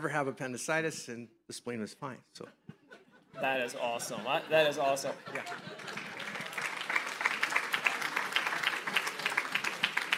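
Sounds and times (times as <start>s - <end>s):
speech: 0.0s - 2.7s, 3.4s - 6.0s
laughter: 2.5s - 6.8s
several people clapping in applause: 4.7s - 10.1s.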